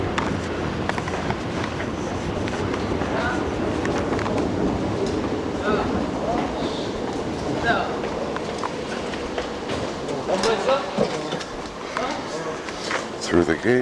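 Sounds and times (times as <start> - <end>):
faint murmuring voices: 0.0 - 13.7
subway train rumbling below a station: 0.0 - 13.7.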